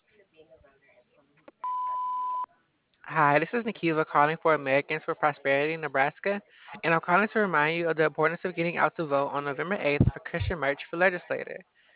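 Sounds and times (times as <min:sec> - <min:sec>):
answering machine beep: 0:01.6 - 0:02.5
speech: 0:03.1 - 0:11.8.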